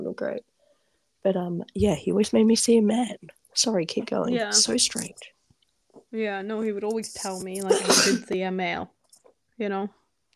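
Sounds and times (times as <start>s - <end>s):
speech: 0.1s - 0.6s, 1.2s - 5.4s, 6.1s - 9.0s, 9.6s - 10.0s
person sneezing: 7.6s - 8.3s.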